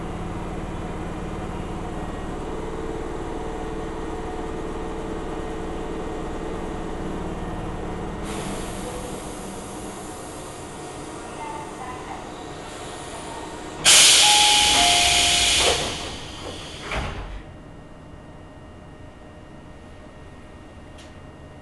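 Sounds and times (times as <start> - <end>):
Tobu Tojo Line local train rumbling: 0.0 - 18.3
loud hiss of train air: 13.8 - 16.9
short beeps: 14.2 - 15.8.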